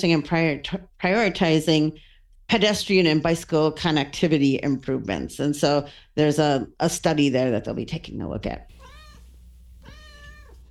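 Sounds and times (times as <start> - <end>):
speech: 0.0 - 8.7
steady low hum: 0.0 - 10.6
female pet cat meowing: 8.7 - 10.6.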